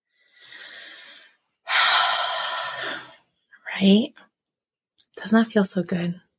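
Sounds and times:
person taking a deep breath: 0.1 - 3.2
speech: 3.8 - 4.2, 5.2 - 6.3.

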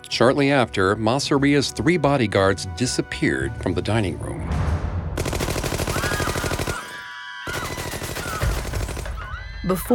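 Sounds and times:
speech: 0.1 - 4.7, 9.7 - 9.9
rapid automatic gunfire from gunmen bursting into a restaurant: 5.2 - 9.2.

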